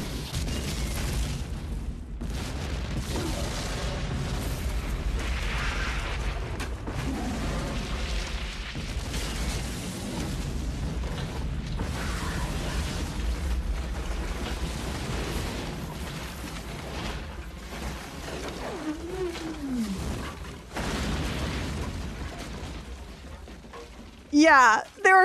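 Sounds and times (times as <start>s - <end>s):
big gasoline explosion with huge fireball: 0.0s - 24.3s
dubbed wildcat roars: 18.4s - 20.4s
speech: 24.4s - 25.2s.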